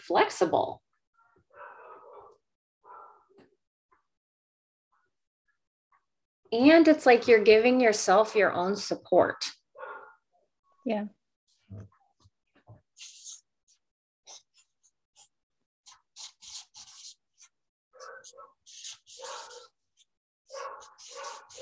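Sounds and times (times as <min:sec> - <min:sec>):
speech: 0:00.1 - 0:00.9, 0:06.5 - 0:09.6, 0:10.8 - 0:11.9
dogs barking in a home: 0:01.5 - 0:03.3, 0:09.8 - 0:10.2, 0:18.0 - 0:19.8, 0:20.5 - 0:21.5.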